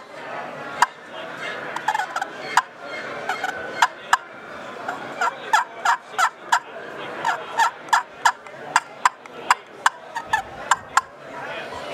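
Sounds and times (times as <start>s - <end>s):
wooden scratch box turkey call clucking, purring and yelping: 1.8s - 4.3s, 4.9s - 11.1s.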